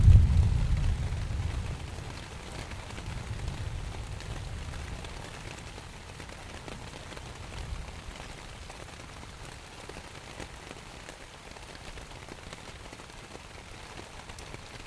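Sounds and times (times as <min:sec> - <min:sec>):
deep low rumble: 0:00.0 - 0:01.7
morning rain pattering on a tent: 0:00.0 - 0:14.8.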